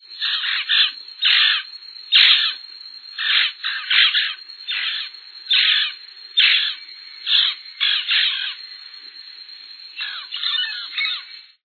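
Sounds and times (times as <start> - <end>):
mealy parrot: 0.2 - 2.6, 3.2 - 8.6, 10.0 - 11.5.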